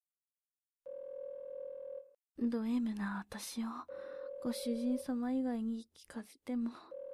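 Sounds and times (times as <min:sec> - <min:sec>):
telephone ringing with continuous electronic tone: 0:00.9 - 0:02.2, 0:04.0 - 0:05.2, 0:06.8 - 0:07.1
speech: 0:02.4 - 0:07.0.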